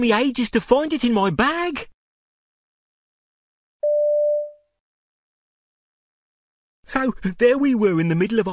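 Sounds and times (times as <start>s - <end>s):
speech: 0.0s - 1.9s, 6.9s - 8.5s
mobile phone electronic ringtone: 3.8s - 4.6s.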